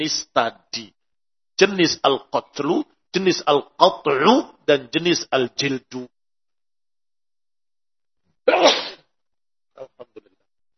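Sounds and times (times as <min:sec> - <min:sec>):
speech: 0:00.0 - 0:01.0, 0:01.6 - 0:06.2, 0:08.5 - 0:08.7
person sneezing: 0:08.5 - 0:09.1.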